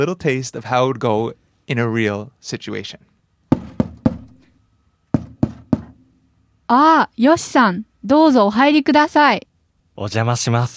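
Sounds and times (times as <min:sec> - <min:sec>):
speech: 0:00.0 - 0:03.1, 0:06.7 - 0:10.7
firm knocking on a door: 0:03.5 - 0:04.5, 0:05.1 - 0:06.2.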